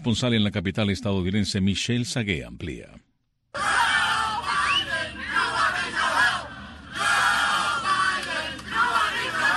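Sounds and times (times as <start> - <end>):
speech: 0.0 - 3.1
large protest crowd chanting and shouting slogans in unison: 3.6 - 9.5.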